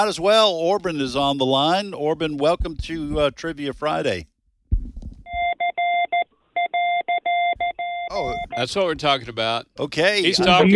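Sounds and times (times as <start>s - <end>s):
speech: 0.0s - 4.3s, 8.1s - 10.7s
Morse code call letters beeping over a phone line: 5.2s - 8.9s.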